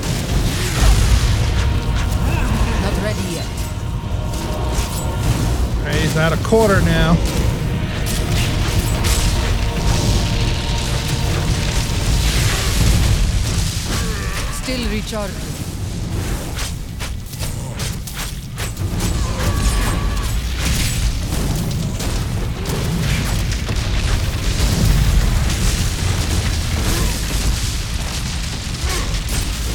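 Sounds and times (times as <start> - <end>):
booming video game explosions: 0.0 - 29.7
speech: 6.2 - 7.5, 14.7 - 15.6.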